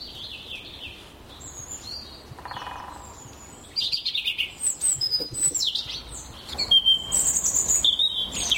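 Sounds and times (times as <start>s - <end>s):
European robin singing: 0.0s - 8.5s
faint bird calls in woodland: 2.4s - 8.5s.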